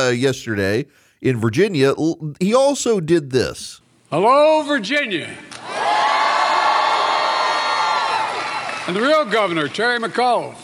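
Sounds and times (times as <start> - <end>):
speech: 0.0 - 6.0, 8.9 - 10.6
higher-pitched voices whooping in a crowd: 5.6 - 9.4
large crowd cheering and shouting at a political rally: 5.6 - 9.4.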